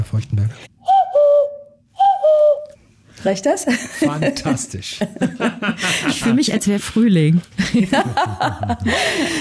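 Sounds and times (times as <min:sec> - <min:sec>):
speech: 0:00.1 - 0:00.8, 0:03.2 - 0:09.3
person whistling an imitation cuckoo call: 0:00.8 - 0:02.8
laughter: 0:03.8 - 0:06.4, 0:07.6 - 0:09.3.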